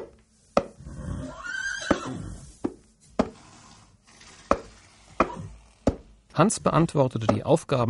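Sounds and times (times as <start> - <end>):
horse whinnying: 0.8 - 2.5, 5.2 - 5.7
speech: 6.4 - 7.8.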